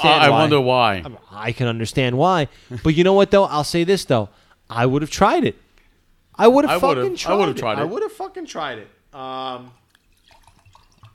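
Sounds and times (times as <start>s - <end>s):
speech: 0.0s - 5.6s, 6.4s - 9.8s
gin and tonic pouring into a glass: 9.8s - 11.1s.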